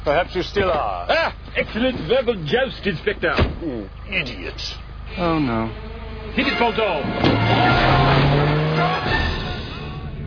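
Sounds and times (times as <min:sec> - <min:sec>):
speech: 0:00.0 - 0:09.3
car engine roaring and straining as it speeds off: 0:00.0 - 0:10.2
tires squealing against the road: 0:05.0 - 0:10.2.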